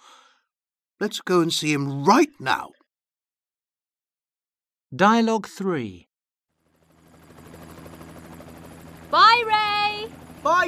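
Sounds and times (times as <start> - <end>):
speech: 1.0 - 2.8, 4.9 - 6.1, 9.1 - 10.6
helicopter flying overhead with thudding rotor chop: 6.6 - 10.6.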